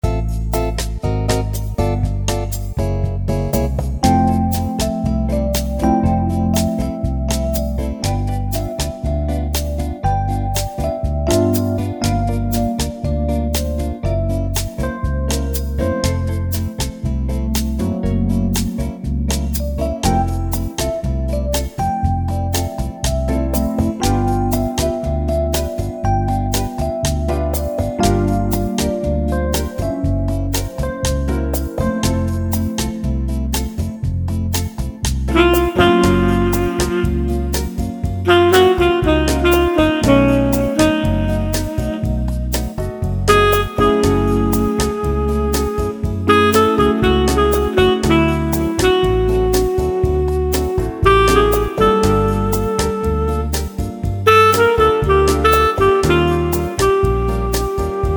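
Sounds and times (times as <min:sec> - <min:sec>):
electric piano playing bossa nova: 0:00.0 - 0:58.1
tenor saxophone playing bossa nova: 0:35.3 - 0:58.1.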